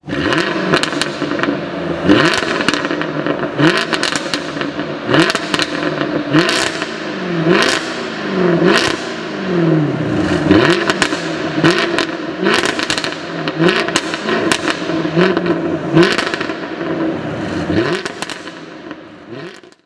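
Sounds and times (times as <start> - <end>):
Jaguar F-Type R V8 sports car engine: 0.0 - 19.8.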